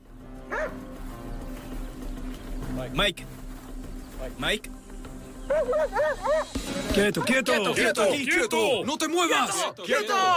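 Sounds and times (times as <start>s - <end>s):
canine unit tracking dog barking: 0.5s - 0.8s, 5.5s - 7.4s
speech: 2.9s - 3.4s, 4.2s - 4.8s, 5.5s - 10.3s.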